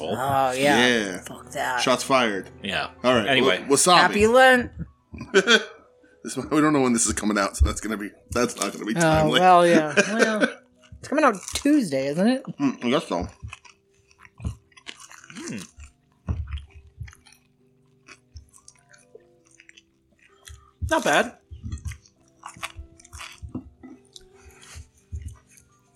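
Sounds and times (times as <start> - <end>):
speech: 0.1 - 13.6, 20.9 - 21.4
laughter: 5.2 - 5.8, 9.0 - 10.6
someone chewing crispy chicken wings: 8.3 - 8.9, 10.6 - 11.8, 12.4 - 25.9
wet mouth noises: 12.4 - 25.9.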